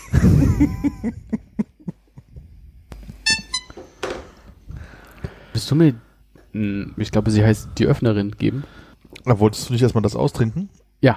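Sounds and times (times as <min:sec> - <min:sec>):
laughter: 0:00.0 - 0:02.4
speech: 0:00.5 - 0:01.4, 0:05.6 - 0:11.1
brief bright horn honk with buzzy tones: 0:03.2 - 0:04.0.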